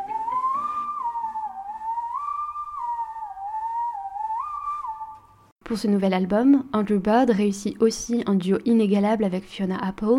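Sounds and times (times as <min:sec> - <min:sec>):
faint low instrumental backing: 0:00.0 - 0:05.4
melodic whistled tune with gentle vibrato: 0:00.0 - 0:05.4
speech: 0:05.7 - 0:10.1.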